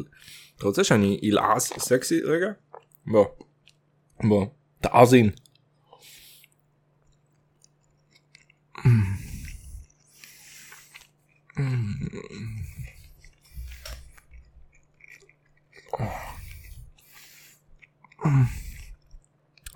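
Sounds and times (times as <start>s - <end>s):
speech: 0.0s - 3.5s, 4.2s - 5.4s, 12.0s - 12.6s, 15.9s - 16.2s, 18.2s - 18.6s
wet chewing with the mouth shut: 2.7s - 3.8s, 5.4s - 19.7s.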